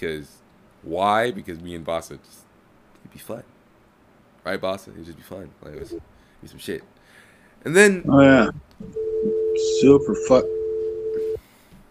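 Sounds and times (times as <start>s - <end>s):
speech: 0.0s - 2.4s, 3.0s - 3.6s, 4.4s - 7.0s, 7.6s - 10.6s
faint noise: 0.0s - 11.8s
telephone dial tone: 10.4s - 11.4s.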